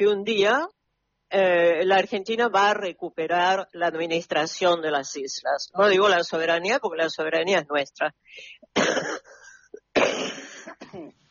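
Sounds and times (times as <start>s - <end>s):
speech: 0.0s - 9.3s
person clearing throat: 8.8s - 11.2s
person coughing: 8.8s - 11.2s.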